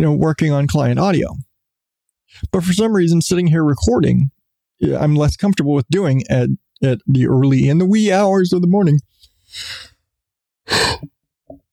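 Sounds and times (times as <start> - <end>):
speech: 0.0 - 1.4, 2.3 - 9.9
person yawning: 10.7 - 11.1.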